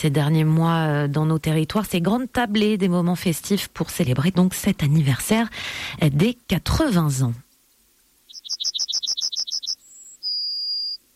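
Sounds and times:
speech: 0:00.0 - 0:07.4
yellowhammer singing: 0:08.3 - 0:11.1.

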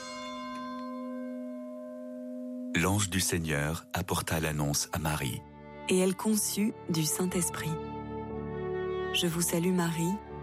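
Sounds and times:
church bells ringing for the Angelus: 0:00.0 - 0:05.2
speech: 0:02.8 - 0:07.9, 0:09.1 - 0:10.2.

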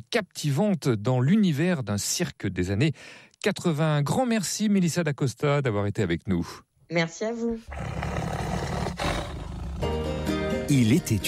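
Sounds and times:
speech: 0:00.1 - 0:08.2, 0:10.7 - 0:11.2
tiger roaring: 0:07.7 - 0:10.0.

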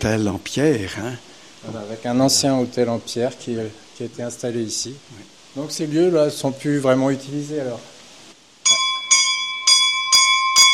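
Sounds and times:
speech: 0:00.0 - 0:07.9
small metallic bell ringing: 0:08.6 - 0:10.7.

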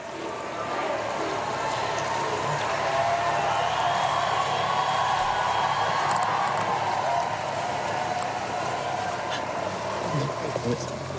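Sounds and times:
large crowd shouting thanks outdoors outside cathedral: 0:00.0 - 0:11.1.

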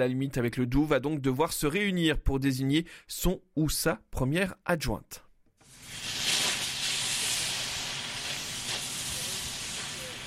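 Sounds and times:
speech: 0:00.0 - 0:05.2
professional blowtorch melting and cutting steel boiler-house chimney: 0:05.6 - 0:10.2.

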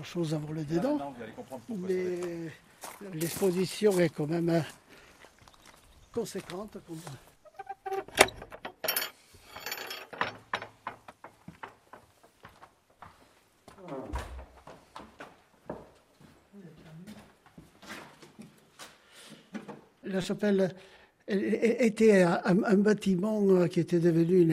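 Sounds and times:
speech: 0:00.0 - 0:04.8, 0:06.1 - 0:07.3, 0:20.2 - 0:24.5
key working the door lock of a chapel: 0:07.6 - 0:09.2.

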